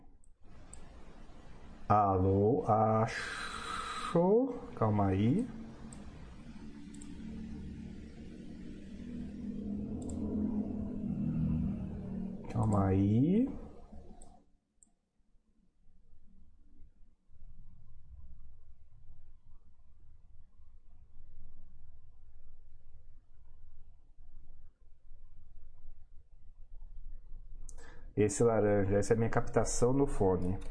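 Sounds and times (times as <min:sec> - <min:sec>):
speech: 0:01.9 - 0:03.5, 0:04.1 - 0:05.6, 0:12.7 - 0:13.6, 0:28.2 - 0:30.6
noisy car passing outside: 0:04.6 - 0:14.2.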